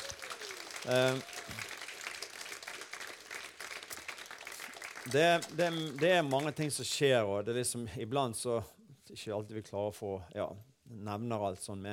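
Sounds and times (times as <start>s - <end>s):
audience applauding: 0.0s - 6.8s
speech: 0.8s - 1.7s, 5.0s - 11.9s.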